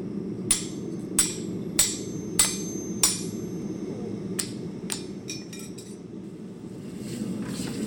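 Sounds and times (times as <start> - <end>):
low rumbling hum: 0.0 - 7.8
hammer blows forging hot iron railroad tie on an anvil: 0.5 - 5.9.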